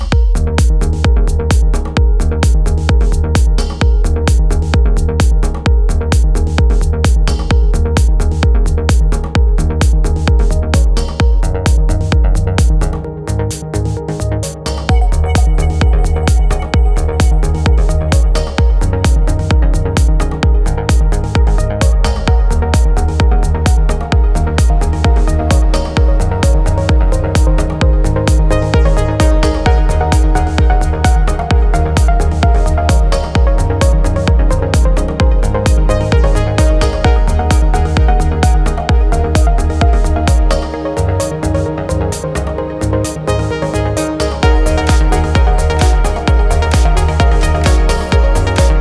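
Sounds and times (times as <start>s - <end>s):
saw pluck trance theme: 0.1s - 48.8s.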